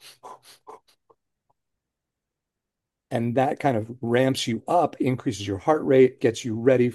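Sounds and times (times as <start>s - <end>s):
quick shallow breaths demonstrated by a person: 0.0s - 1.0s
speech: 3.1s - 6.9s.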